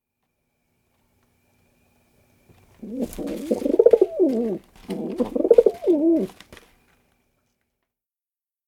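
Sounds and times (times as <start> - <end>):
rock pigeon soft cooing: 2.7 - 6.4.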